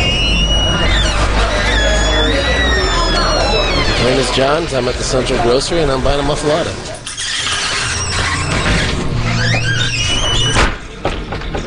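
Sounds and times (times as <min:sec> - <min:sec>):
murmur: 0:00.0 - 0:07.8
pub men's room door hinges squealing: 0:00.0 - 0:11.0
speech: 0:04.3 - 0:07.0.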